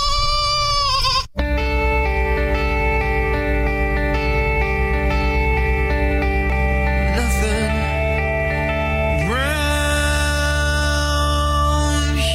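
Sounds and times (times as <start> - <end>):
goat bleating: 0.0 - 1.4
loud sustained musical chord: 1.4 - 12.3.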